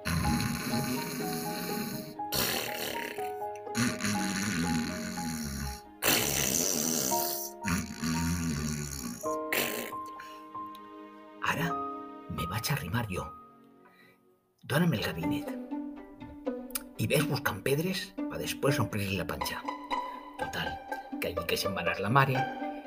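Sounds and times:
wolf snoring while lying by a river: 0.0 - 10.2
music with sustained tones: 0.0 - 22.8
speech: 12.6 - 13.4, 14.7 - 15.6, 17.0 - 19.8, 20.4 - 22.6.

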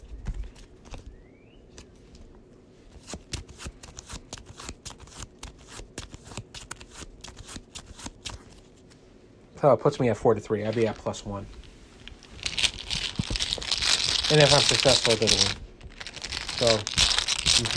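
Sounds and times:
cards being shuffled during a card game: 2.9 - 9.0, 10.7 - 17.7
speech: 9.6 - 11.6, 14.3 - 15.6, 16.6 - 17.0.

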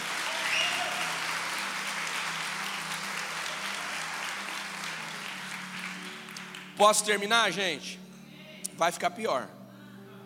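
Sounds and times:
audience applauding: 0.0 - 7.1
speech: 6.8 - 8.0, 8.8 - 9.6.

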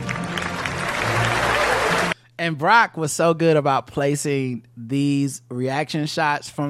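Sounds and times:
hand claps from a played reaction clip: 0.0 - 2.2
speech: 2.4 - 6.6.

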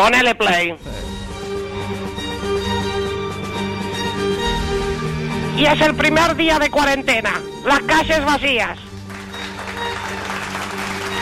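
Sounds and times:
speech: 0.0 - 1.3, 5.6 - 8.8
low hum: 0.8 - 7.5
applause from balconies for doctors: 8.8 - 11.1.

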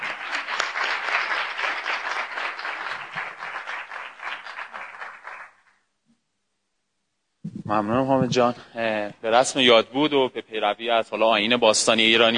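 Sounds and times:
crowd applause with dense clapping from many hands: 0.0 - 5.7
speech: 7.7 - 12.3.

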